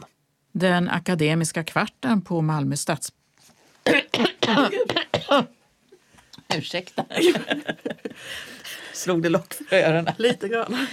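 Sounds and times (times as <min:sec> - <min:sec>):
speech: 0:00.6 - 0:03.2, 0:03.9 - 0:05.6, 0:06.5 - 0:10.9
irritating tickly dry hacking cough: 0:03.8 - 0:05.5
laughter: 0:06.9 - 0:08.8.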